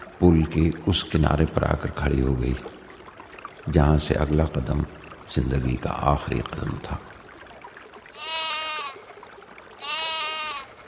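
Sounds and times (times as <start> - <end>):
speech: 0.2 - 2.8, 3.7 - 7.1, 8.1 - 8.4
lamb bleating: 8.2 - 9.0, 9.8 - 10.7.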